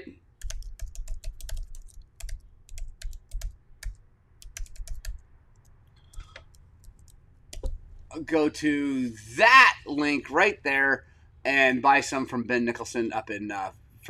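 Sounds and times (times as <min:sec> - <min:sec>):
typing on a computer keyboard: 0:00.4 - 0:07.8
speech: 0:08.2 - 0:14.0.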